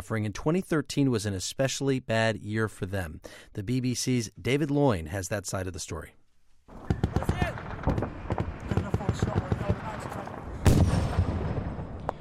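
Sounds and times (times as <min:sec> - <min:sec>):
speech: 0:00.1 - 0:06.8
gunshots echoing across mountain passes on the Afghanistan-Pakistan frontier: 0:06.7 - 0:12.2
heavy blast: 0:06.7 - 0:12.2.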